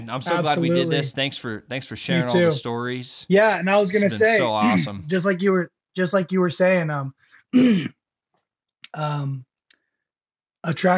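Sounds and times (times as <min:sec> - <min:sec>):
speech: 0:00.0 - 0:08.0, 0:08.9 - 0:09.5, 0:10.6 - 0:10.9
throat clearing from morning phlegm: 0:07.5 - 0:08.0.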